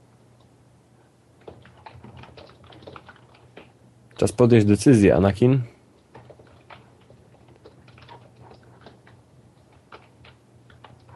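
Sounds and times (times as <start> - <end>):
low steady hum: 0.0 - 11.1
typing on a loud computer keyboard: 1.4 - 4.3, 6.0 - 11.1
speech: 4.2 - 5.7.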